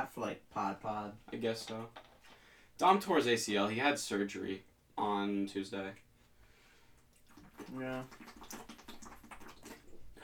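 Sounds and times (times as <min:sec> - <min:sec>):
speech: 0:00.0 - 0:02.1, 0:02.8 - 0:06.0, 0:07.6 - 0:08.6
person gulping water noisily: 0:07.0 - 0:10.2
wet swallowing and slurping: 0:07.0 - 0:10.2.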